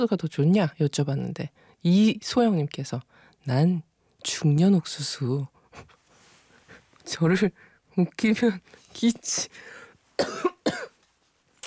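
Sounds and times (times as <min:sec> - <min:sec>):
speech: 0:00.0 - 0:06.0, 0:07.1 - 0:10.5
person coughing: 0:10.2 - 0:11.0.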